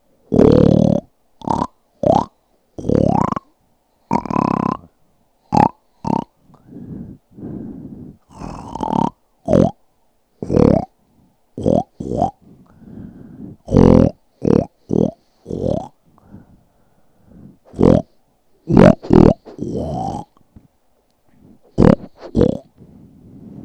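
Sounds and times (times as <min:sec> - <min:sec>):
pig oinking: 0:00.3 - 0:03.5, 0:04.1 - 0:04.9, 0:05.5 - 0:06.3, 0:08.4 - 0:09.8, 0:10.4 - 0:10.9, 0:11.6 - 0:12.4, 0:13.7 - 0:16.0, 0:17.7 - 0:18.1, 0:18.7 - 0:20.3, 0:21.7 - 0:22.7.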